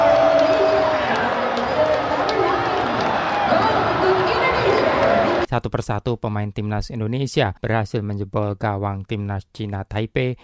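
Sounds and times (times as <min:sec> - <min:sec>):
crowd of 16,000 spectators shouting and cheering goals in a stadium: 0:00.0 - 0:05.5
speech: 0:05.5 - 0:10.4.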